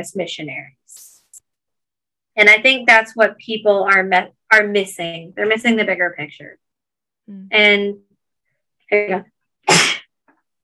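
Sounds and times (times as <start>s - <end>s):
speech: 0.0s - 1.1s, 2.4s - 6.6s, 7.3s - 8.1s, 8.9s - 9.9s
loud sneeze: 9.7s - 10.1s.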